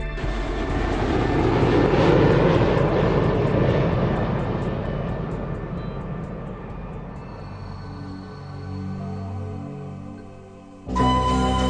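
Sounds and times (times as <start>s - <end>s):
airplane engine roar: 0.0s - 11.6s
faint high whine of an airplane engine: 5.6s - 11.6s.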